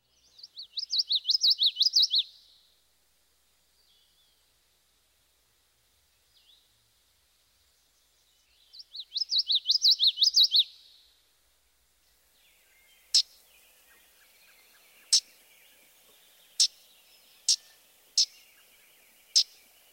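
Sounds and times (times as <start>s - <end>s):
common yellowthroat singing its witchity-witchity song: 0.0s - 2.7s, 7.7s - 11.1s, 12.0s - 19.9s
faint sounds: 0.0s - 19.9s.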